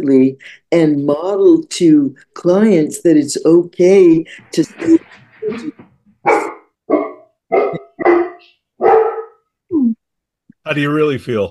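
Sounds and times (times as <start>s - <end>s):
speech: 0.0s - 8.6s, 10.6s - 11.4s
dog barking: 6.2s - 9.5s.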